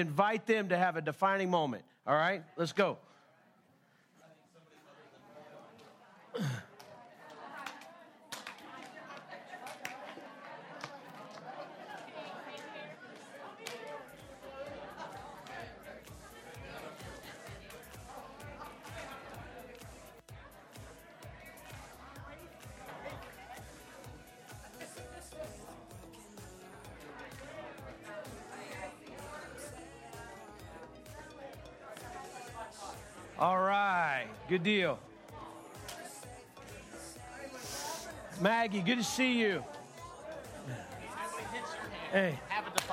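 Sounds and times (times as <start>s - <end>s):
speech: 0.0s - 3.1s, 38.6s - 39.8s, 42.1s - 42.5s
large indoor church crowd chattering: 0.0s - 42.9s
people laughing: 6.3s - 20.1s, 37.5s - 42.9s
hand claps or slaps from high-fiving: 7.6s - 10.1s, 35.8s - 36.1s, 42.7s - 42.9s.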